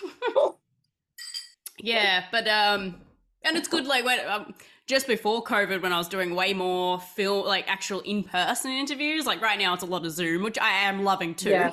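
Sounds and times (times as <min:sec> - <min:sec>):
drinking glasses clinking in a toast: 0:01.2 - 0:01.7
speech: 0:01.8 - 0:11.7.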